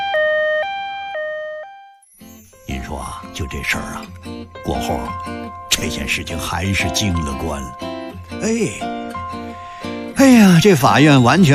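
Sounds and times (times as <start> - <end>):
ambulance siren: 0.0 - 2.0
speech: 2.8 - 9.0, 10.2 - 11.5.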